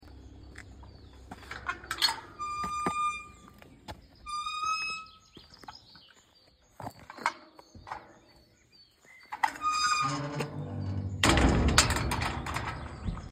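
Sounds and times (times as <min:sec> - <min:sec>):
entrance gate noises in Londigny: 0:01.2 - 0:03.6, 0:04.2 - 0:05.2, 0:09.3 - 0:13.3.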